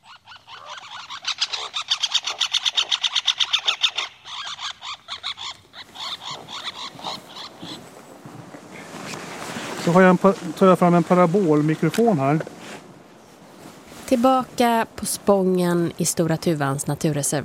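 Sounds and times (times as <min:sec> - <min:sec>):
two birds giving harsh aggressive calls: 0:00.0 - 0:08.0
speech: 0:09.9 - 0:12.6, 0:14.1 - 0:17.4.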